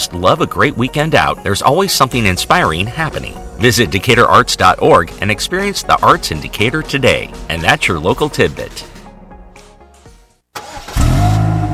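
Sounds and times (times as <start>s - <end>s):
speech: 0.0s - 8.9s
car engine cranking: 10.6s - 11.7s.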